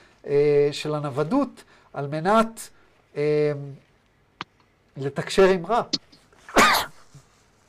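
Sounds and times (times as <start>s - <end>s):
faint room noise: 0.0s - 7.6s
speech: 0.2s - 3.9s, 5.0s - 6.1s
single sharp sneeze: 6.5s - 7.2s.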